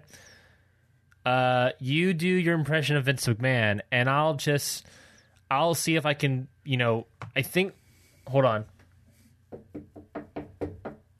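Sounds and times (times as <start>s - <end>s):
speech: 1.2s - 8.7s
firm knocks on a wooden door: 9.5s - 11.1s.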